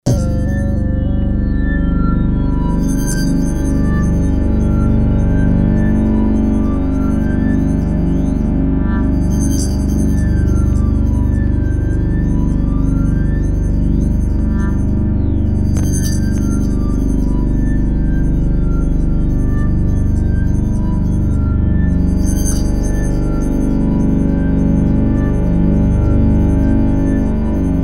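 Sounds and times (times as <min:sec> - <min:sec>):
drone: 0:00.0 - 0:27.8.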